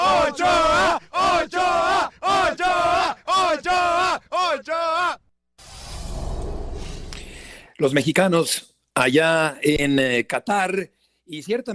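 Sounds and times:
crowd of football fans chanting a rhythmic cheer: 0.0 - 4.6
speech: 7.8 - 11.7.

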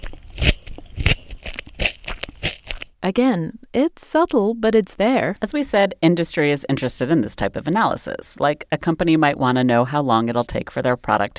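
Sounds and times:
person biting and chewing a crunchy carrot: 0.0 - 3.0
speech: 3.0 - 11.3.

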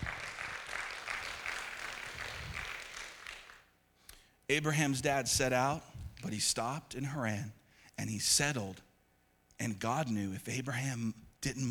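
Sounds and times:
church audience applauding during a sermon: 0.0 - 3.7
speech: 4.5 - 8.9, 9.6 - 11.6.

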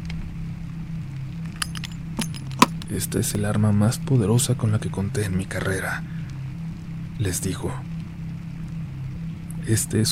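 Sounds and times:
key unlocking a small wooden box: 1.5 - 3.4
speech: 2.9 - 6.2, 7.2 - 7.9, 9.6 - 10.1.

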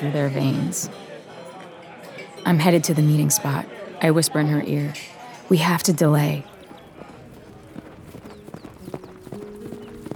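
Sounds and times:
speech: 0.0 - 1.1, 2.4 - 6.5
ridden mare's hooves clip-clopping at a hard pace: 6.4 - 10.1.

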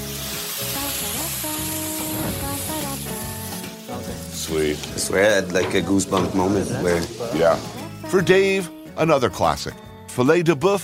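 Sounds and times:
pan sizzling as a dish is flambéed in hot fat: 0.0 - 8.8
tuneful music: 0.0 - 10.8
speech: 4.5 - 10.8.

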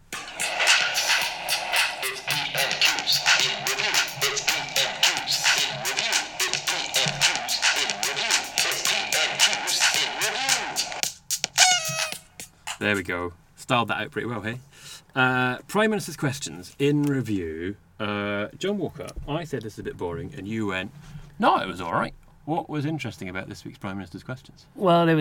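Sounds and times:
rising electronic flourish: 0.0 - 11.0
podcast segment musical jingle with rapid percussive hits and bright layered tones: 0.0 - 12.4
speech: 12.8 - 25.1.

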